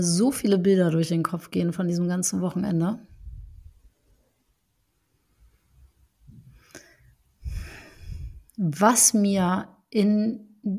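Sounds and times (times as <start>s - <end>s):
speech: 0.0s - 3.1s, 8.6s - 10.7s
deep breath in and out: 6.4s - 8.6s.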